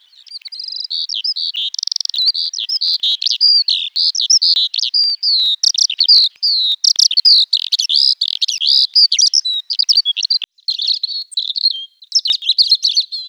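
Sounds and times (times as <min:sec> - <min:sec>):
bird singing warbled whistles and chattering trills: 0:00.0 - 0:13.2.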